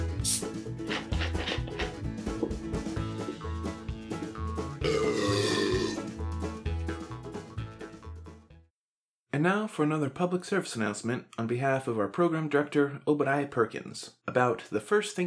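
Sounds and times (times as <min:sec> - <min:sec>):
steady music: 0:00.0 - 0:08.7
man belching loudly: 0:04.8 - 0:06.1
speech: 0:09.4 - 0:15.2.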